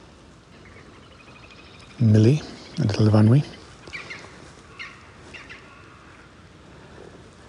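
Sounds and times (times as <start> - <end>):
woodpecker calling in treetops: 0.6 - 6.3
speech: 2.0 - 3.6.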